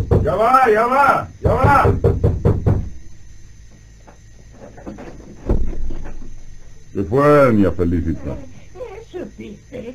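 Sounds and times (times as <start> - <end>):
knocking on a wooden door: 0.0 - 0.6, 1.4 - 3.1
speech: 0.2 - 2.3, 7.0 - 8.5, 9.2 - 9.9
heavy thump with rattling: 1.4 - 3.2, 4.7 - 6.8.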